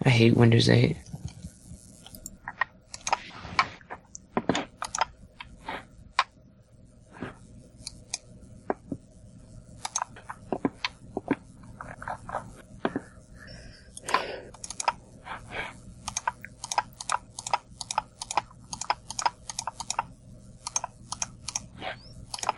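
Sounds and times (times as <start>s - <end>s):
faint hum: 0.0s - 22.5s
speech: 0.1s - 1.1s
computer mouse clicking: 1.0s - 6.4s, 7.8s - 8.3s, 9.7s - 11.4s, 13.9s - 15.0s, 16.0s - 22.5s.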